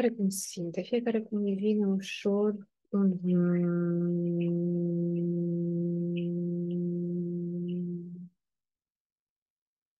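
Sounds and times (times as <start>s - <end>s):
speech: 0.0s - 6.0s
steady low hum with closed lips: 3.2s - 8.5s
faint high ticks: 3.5s - 8.4s.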